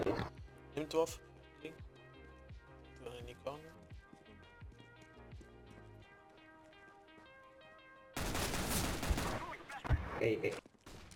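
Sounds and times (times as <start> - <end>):
speech: 0.8 - 1.9, 3.0 - 3.9, 10.2 - 10.6
video game gunfire bursts: 8.2 - 10.1.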